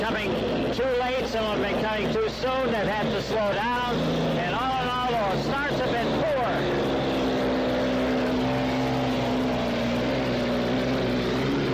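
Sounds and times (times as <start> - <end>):
powerful racing boat engine roaring as the boat passes during a boat race: 0.0 - 11.7
speech: 1.3 - 6.3.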